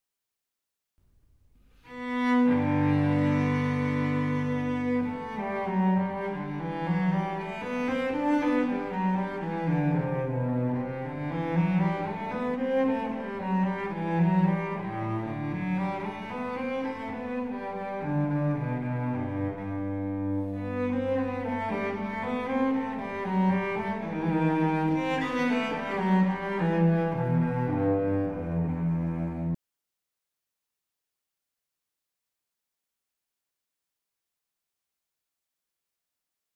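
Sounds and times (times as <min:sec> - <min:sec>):
bowed cello: 0:01.8 - 0:29.6.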